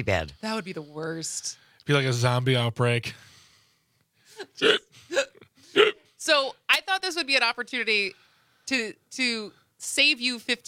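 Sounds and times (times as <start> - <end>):
speech: 0.0 - 3.3, 4.4 - 4.8, 5.8 - 10.6
person hiccuping: 4.5 - 6.1.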